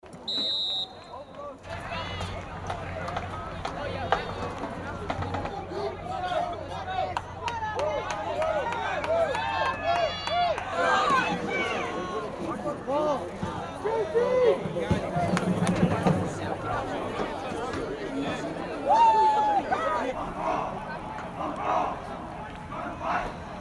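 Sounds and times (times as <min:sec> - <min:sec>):
high school football crowd ambience: 0:00.0 - 0:23.5.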